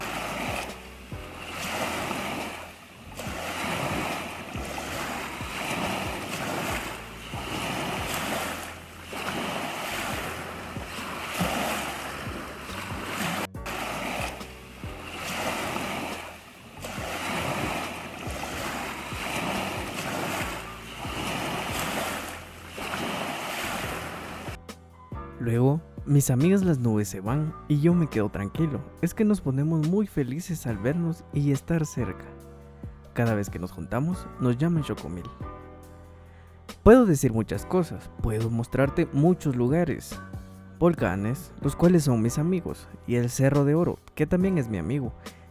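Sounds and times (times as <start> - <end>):
strong lake waves crashing: 0.0 - 24.6
speech: 25.5 - 32.4, 33.2 - 35.5, 36.8 - 45.4.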